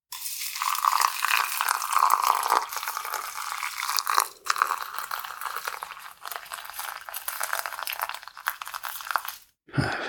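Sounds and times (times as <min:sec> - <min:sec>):
boiling water poured over tea leaves in a strainer in a cup: 0:00.1 - 0:09.5.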